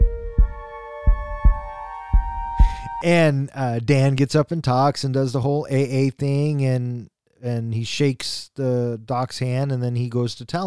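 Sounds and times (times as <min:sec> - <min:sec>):
heavy low heartbeat: 0:00.0 - 0:03.0
speech: 0:03.0 - 0:10.6.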